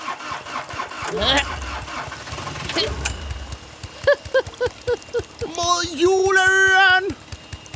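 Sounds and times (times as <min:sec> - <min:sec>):
pirate ship engine starting: 0:00.0 - 0:06.4
speech: 0:01.1 - 0:01.6, 0:05.7 - 0:07.2
laughter: 0:02.6 - 0:06.4.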